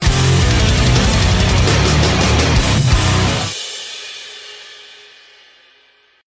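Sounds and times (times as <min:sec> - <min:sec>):
outro music: 0:00.0 - 0:03.6.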